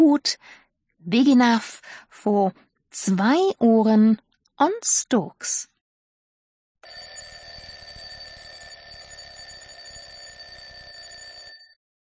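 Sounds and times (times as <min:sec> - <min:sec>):
speech: 0:00.0 - 0:05.7
alarm clock ringing with metallic bell: 0:06.8 - 0:11.8.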